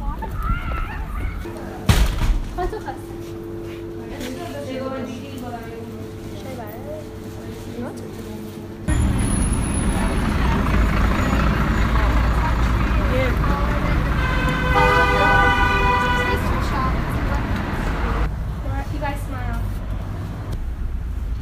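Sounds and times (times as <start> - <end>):
city street traffic of cars and trucks in Seoul: 0.0 - 21.4
people talking: 2.6 - 3.2, 4.0 - 19.7
vehicle passing: 8.9 - 20.6
horn tooting: 13.7 - 18.2.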